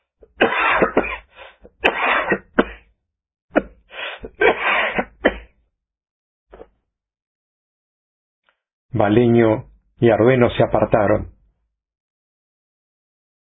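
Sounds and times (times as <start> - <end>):
loud harsh coughing fit: 0.3 - 2.9, 3.6 - 5.6
speech: 9.0 - 11.3.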